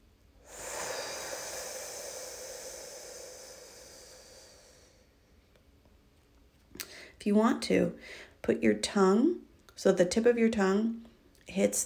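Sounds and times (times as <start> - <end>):
slow deep breathing in and out: 0.4 - 5.4
speech: 7.2 - 11.8.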